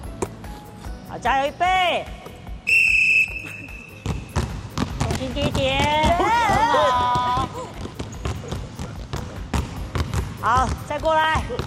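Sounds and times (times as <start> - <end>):
speech: 1.1 - 2.3, 5.2 - 6.1, 10.4 - 11.6
basketball dribbled in a moving drill: 3.9 - 11.6.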